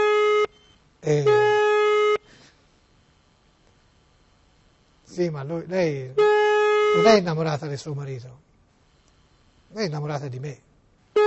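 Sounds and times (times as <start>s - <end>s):
telephone line tones during a call: 0.0s - 2.3s
speech: 1.0s - 1.5s, 5.2s - 8.5s, 9.7s - 10.7s.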